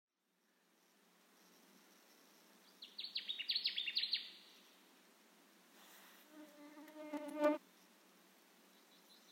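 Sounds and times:
Connecticut warbler song: 0:00.4 - 0:04.8, 0:08.6 - 0:09.2
low harmonic buzzy sound: 0:06.4 - 0:07.6.

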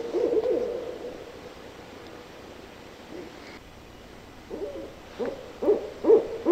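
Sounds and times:
barred owl hooting: 0:00.0 - 0:01.5, 0:03.1 - 0:03.6, 0:04.5 - 0:06.5.

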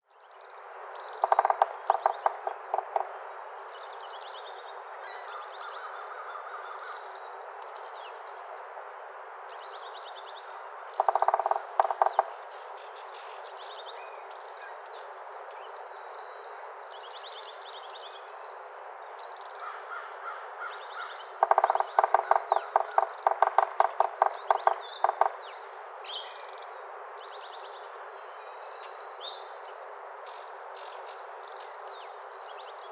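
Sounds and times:
yellow-bellied sapsucker drumming: 0:01.2 - 0:03.2, 0:11.0 - 0:12.4, 0:21.4 - 0:25.4.

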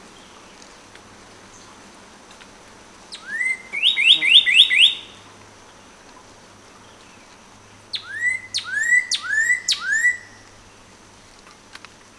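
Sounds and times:
northern cardinal singing clear slurred whistles: 0:03.1 - 0:05.2, 0:08.0 - 0:10.5.

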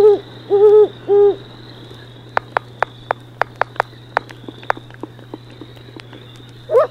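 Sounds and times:
great horned owl hooting: 0:00.0 - 0:06.8
sharp clicking taps: 0:02.3 - 0:06.8.

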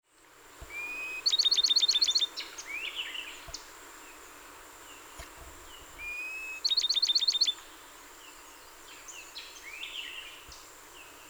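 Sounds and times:
Bachman's sparrow song: 0:00.7 - 0:03.2, 0:06.0 - 0:07.6.

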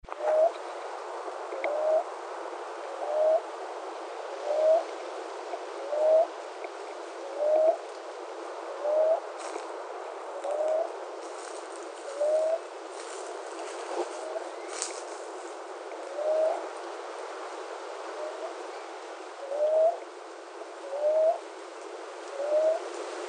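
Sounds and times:
Common Ground Dove calling: 0:00.0 - 0:00.6, 0:01.6 - 0:02.1, 0:02.8 - 0:03.5, 0:04.3 - 0:04.9, 0:05.8 - 0:07.8, 0:08.7 - 0:09.6, 0:10.3 - 0:16.8, 0:18.1 - 0:20.1, 0:20.8 - 0:21.5, 0:22.3 - 0:22.9.

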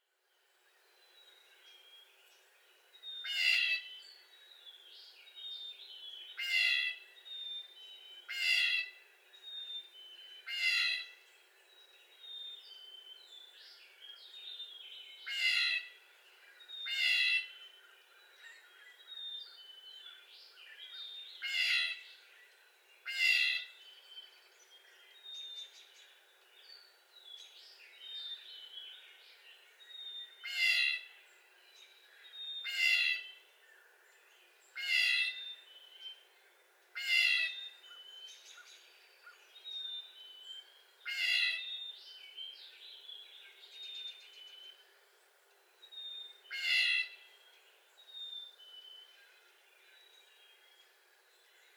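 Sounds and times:
Blue Jay making whiny jay calls: 0:03.2 - 0:03.9, 0:06.4 - 0:07.0, 0:08.3 - 0:09.0, 0:10.4 - 0:11.2, 0:15.2 - 0:16.0, 0:16.8 - 0:17.6, 0:21.4 - 0:22.0, 0:23.0 - 0:23.8, 0:30.4 - 0:31.1, 0:32.6 - 0:33.4, 0:34.7 - 0:35.6, 0:36.9 - 0:37.8, 0:41.0 - 0:41.8, 0:46.5 - 0:47.2.

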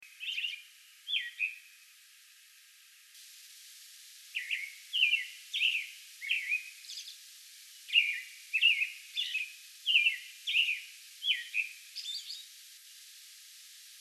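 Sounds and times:
American robin song with caroling and warbled phrases: 0:00.1 - 0:01.6, 0:04.4 - 0:07.2, 0:07.9 - 0:12.5.

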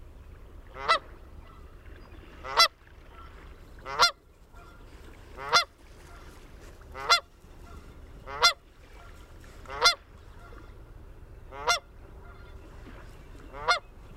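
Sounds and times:
Canada geese honking: 0:00.8 - 0:01.6, 0:02.4 - 0:04.8, 0:05.4 - 0:06.3, 0:06.9 - 0:10.6, 0:11.5 - 0:12.6, 0:13.5 - 0:13.8.

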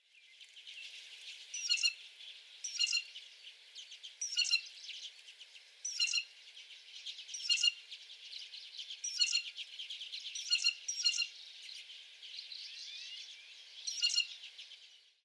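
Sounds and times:
blue jay pump call: 0:01.6 - 0:02.0, 0:02.6 - 0:03.1, 0:04.2 - 0:04.7, 0:05.9 - 0:06.3, 0:07.4 - 0:07.8, 0:09.0 - 0:09.5, 0:10.4 - 0:11.3.

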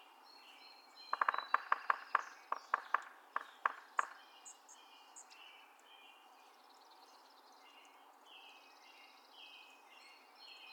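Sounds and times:
Yellow-bellied Sapsucker drumming: 0:01.1 - 0:04.2.

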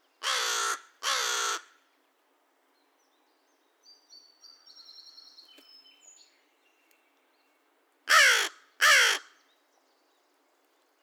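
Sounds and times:
American crow giving harsh rasping caws: 0:00.2 - 0:01.8, 0:08.1 - 0:09.4.

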